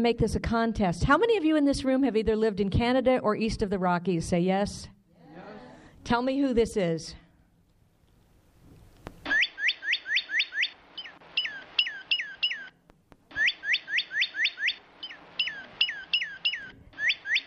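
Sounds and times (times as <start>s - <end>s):
speech: 0.0s - 5.0s, 6.0s - 7.2s
Northern Cardinal singing clear whistled phrases: 9.3s - 12.7s, 13.4s - 17.4s.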